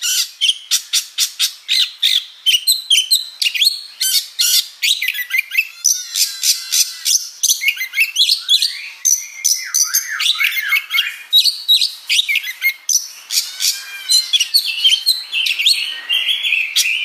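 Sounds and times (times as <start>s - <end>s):
Oriental magpie-robin song: 0.0s - 17.0s.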